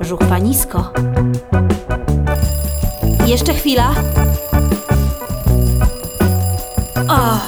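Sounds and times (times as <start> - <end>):
speech: 0.1 - 1.8, 3.3 - 4.5
alarm clocks received as a gift ringing: 2.3 - 7.4.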